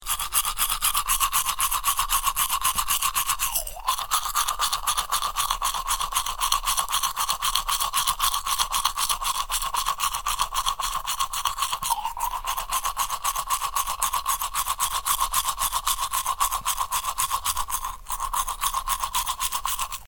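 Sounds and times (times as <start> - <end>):
toothbrush brushing teeth: 0.0 - 20.0.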